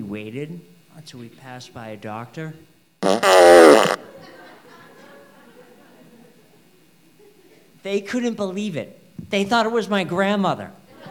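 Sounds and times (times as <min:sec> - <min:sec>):
speech: 0:00.1 - 0:04.4, 0:07.8 - 0:10.8
fart machine hidden in a wheelchair blaring fart noise: 0:03.0 - 0:04.0.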